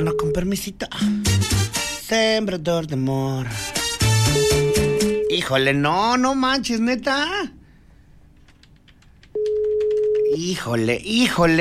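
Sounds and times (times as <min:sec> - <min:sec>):
telephone busy tone after a rejected call: 0:00.0 - 0:00.4, 0:04.3 - 0:05.5, 0:09.4 - 0:10.4
speech: 0:00.0 - 0:03.8, 0:05.4 - 0:07.6, 0:10.4 - 0:11.5.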